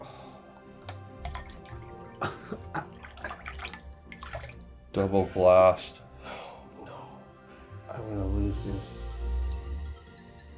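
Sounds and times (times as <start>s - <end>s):
liquid dripping: 0.8s - 5.0s
liquid poured from a height into a cup: 1.2s - 4.8s
speech: 2.2s - 2.6s, 5.0s - 6.0s, 8.5s - 9.0s.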